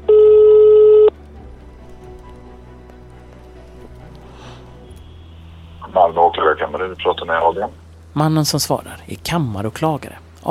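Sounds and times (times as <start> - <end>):
phone ring tone of a call to a prosecutor's office: 0.0 - 1.2
speech: 6.8 - 10.4.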